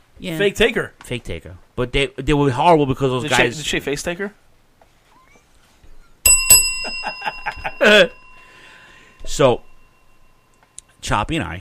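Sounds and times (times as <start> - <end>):
speech: 0.2 - 4.4, 7.8 - 8.2, 9.3 - 9.7, 11.0 - 11.5
bell struck and ringing: 6.3 - 10.4.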